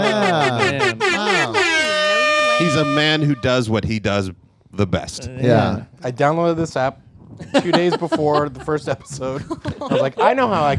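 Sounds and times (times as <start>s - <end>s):
laughter: 0.0s - 3.5s, 7.4s - 10.7s
loud blaring air horn blasts: 0.0s - 3.7s
speech: 2.7s - 10.7s.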